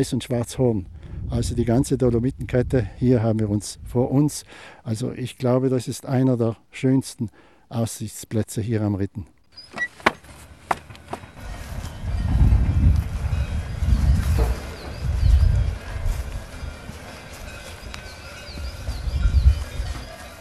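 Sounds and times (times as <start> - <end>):
speech: 0.0 - 9.4
cowbells on cows clanking outdoors on the Ritten: 10.7 - 20.3.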